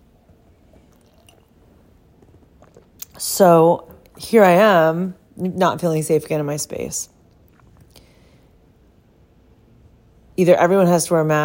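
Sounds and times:
low steady rumble: 0:00.0 - 0:11.4
person drinking water and swallowing: 0:00.6 - 0:03.3, 0:07.3 - 0:08.2
speech: 0:03.2 - 0:07.2, 0:10.4 - 0:11.4.

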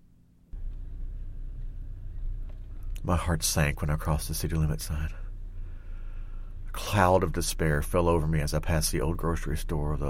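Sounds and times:
car engine idling then revving as the car drives along: 0:00.6 - 0:08.0
speech: 0:03.0 - 0:05.2, 0:06.9 - 0:10.0.

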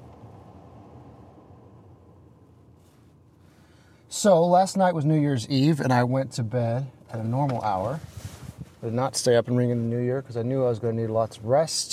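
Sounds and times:
road rumble inside a moving car: 0:00.0 - 0:11.9
speech: 0:04.2 - 0:08.2, 0:08.8 - 0:11.9.

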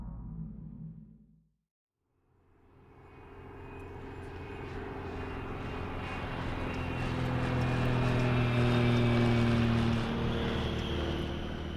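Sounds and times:
small 16-seat chartered plane engine droning at Sana'a Airport in Yemen: 0:02.7 - 0:11.7.

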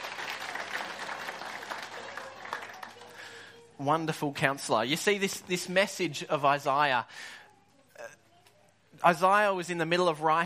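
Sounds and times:
audience applause: 0:00.0 - 0:03.5
speech: 0:03.8 - 0:07.4, 0:09.0 - 0:10.4.

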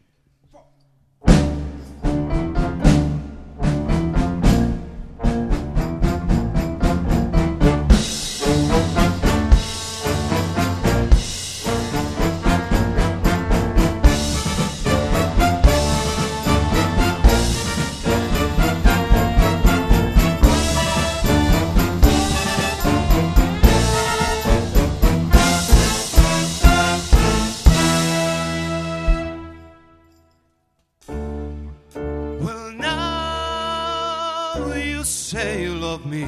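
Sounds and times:
big band jazz ensemble playing together: 0:01.2 - 0:30.0, 0:31.0 - 0:36.2
steady drum beat: 0:01.3 - 0:29.6
punchy brass chords: 0:01.3 - 0:30.1.

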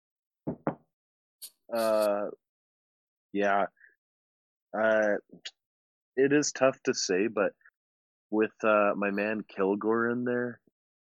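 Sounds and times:
knocking on wood: 0:00.5 - 0:00.8
speech: 0:01.7 - 0:02.4, 0:03.3 - 0:03.8, 0:04.7 - 0:05.6, 0:06.2 - 0:07.6, 0:08.3 - 0:10.6.

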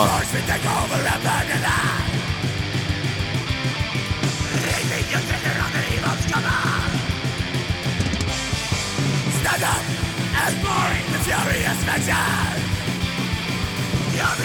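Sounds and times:
speech: 0:00.0 - 0:01.8, 0:10.4 - 0:12.7
harsh yelled vocals in a metal track: 0:00.0 - 0:03.0, 0:04.2 - 0:07.5, 0:09.2 - 0:14.4
distorted guitars in a metal track: 0:00.0 - 0:14.4
fast pounding drums in a metal track: 0:00.0 - 0:14.4.

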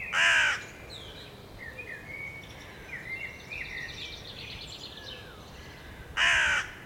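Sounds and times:
crow cawing: 0:00.1 - 0:00.6, 0:05.7 - 0:06.8.

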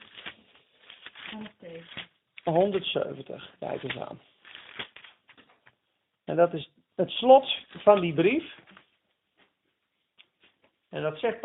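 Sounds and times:
book pages flipping: 0:00.0 - 0:05.8, 0:07.6 - 0:10.8
speech: 0:01.4 - 0:04.3, 0:06.3 - 0:08.6, 0:10.9 - 0:11.4.

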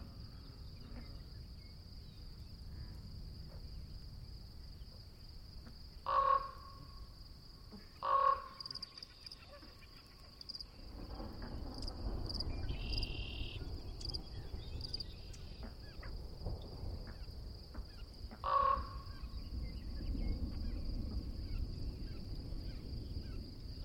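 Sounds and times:
thin high insect whine: 0:00.0 - 0:23.8
loud sharp calls with ringing tone, likely a frog: 0:05.6 - 0:10.8, 0:11.4 - 0:23.4.

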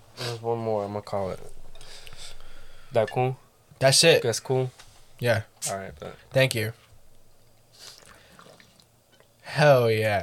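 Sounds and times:
speech: 0:00.4 - 0:01.6, 0:02.9 - 0:06.8, 0:09.5 - 0:10.2
faint water drips: 0:07.1 - 0:09.5
water spilling onto a person drinking it: 0:07.8 - 0:08.9.

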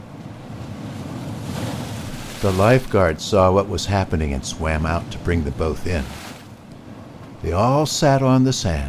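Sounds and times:
ocean surf rushing and churning: 0:00.0 - 0:08.8
speech: 0:02.4 - 0:06.2, 0:07.4 - 0:08.8.

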